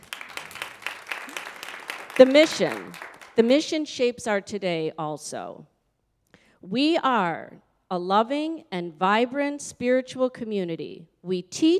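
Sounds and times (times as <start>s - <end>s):
audience applause: 0.0s - 3.4s
speech: 2.2s - 5.7s, 6.6s - 11.7s.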